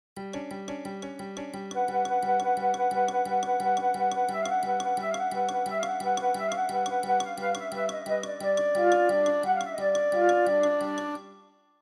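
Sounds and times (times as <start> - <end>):
narrative pop quiz music: 1.8 - 11.2.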